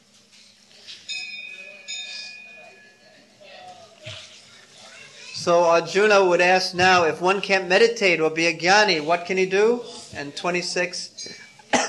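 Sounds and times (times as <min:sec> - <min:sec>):
small bell ringing: 0:01.0 - 0:03.7
speech: 0:05.4 - 0:11.4.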